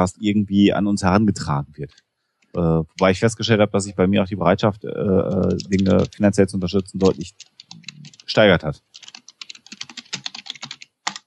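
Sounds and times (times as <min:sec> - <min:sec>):
speech: 0:00.0 - 0:07.5, 0:08.3 - 0:09.1
loud clacking of computer keyboard typing: 0:05.2 - 0:11.2.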